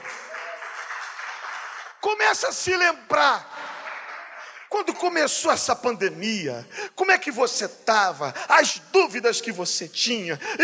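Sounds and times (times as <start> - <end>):
crowd clapping: 0.0 - 5.1
speech: 2.1 - 3.5, 4.8 - 10.6.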